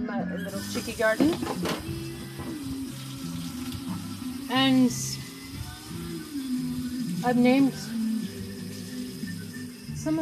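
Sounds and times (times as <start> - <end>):
speech: 0.1 - 2.0, 4.5 - 5.1, 7.2 - 7.9
water pouring from a tap or spout into a container: 0.5 - 10.1.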